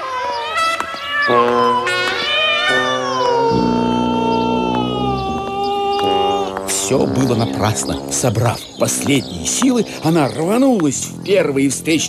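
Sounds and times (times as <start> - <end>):
cat on a street yowling loudly: 0.0 - 6.5
speech: 1.3 - 1.9, 6.9 - 12.0.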